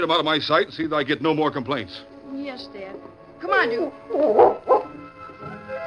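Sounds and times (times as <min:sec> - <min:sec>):
speech: 0:00.0 - 0:05.2
dog growling at a ranch gate: 0:04.1 - 0:05.0
dog barking at a ranch gate: 0:04.2 - 0:05.0.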